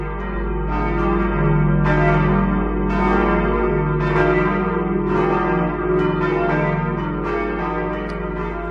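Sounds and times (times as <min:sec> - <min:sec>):
church bells pealing at noon in Oberteres, Lower Franconia, Germany: 0:00.0 - 0:08.7.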